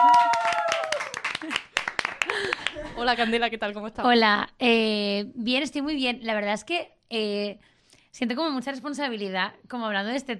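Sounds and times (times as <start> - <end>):
vocal whoop: 0.0 - 1.2
small audience clapping: 0.0 - 2.9
speech: 3.0 - 10.3.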